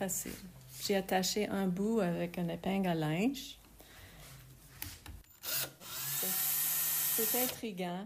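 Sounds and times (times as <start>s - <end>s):
speech: 0.0s - 3.6s, 7.2s - 8.0s
electric drill whirring while twisting paper into thread: 5.4s - 7.6s.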